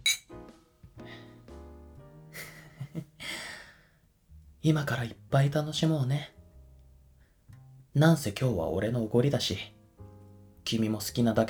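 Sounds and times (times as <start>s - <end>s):
glasses clinking in a birthday toast: 0.0s - 0.3s
breathy exhales: 3.2s - 4.0s
speech: 4.6s - 6.4s, 8.0s - 9.8s, 10.7s - 11.4s.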